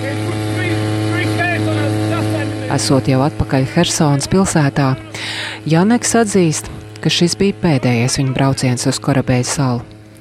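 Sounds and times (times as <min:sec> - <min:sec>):
motorboat engine drone leaving an island near Kherson: 0:00.0 - 0:10.1
speech: 0:02.7 - 0:09.9.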